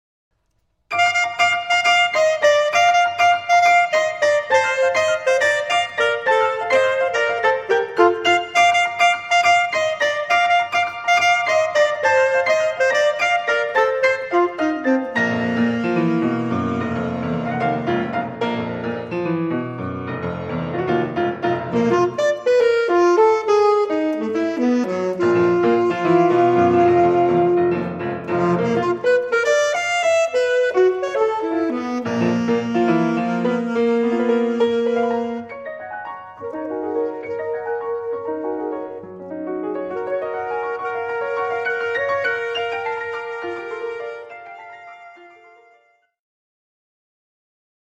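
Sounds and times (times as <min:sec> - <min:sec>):
piano: 0:00.3 - 0:46.2
alto saxophone: 0:00.9 - 0:18.7, 0:21.5 - 0:35.6, 0:36.4 - 0:46.2.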